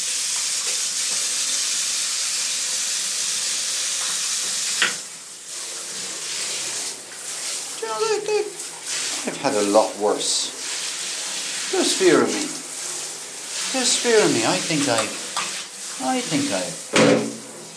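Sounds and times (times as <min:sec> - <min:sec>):
shower jet spraying water in a hotel bathroom: 0:00.0 - 0:17.7
speech: 0:08.0 - 0:08.6, 0:09.2 - 0:10.6, 0:11.7 - 0:12.5, 0:13.7 - 0:15.2, 0:16.0 - 0:17.4.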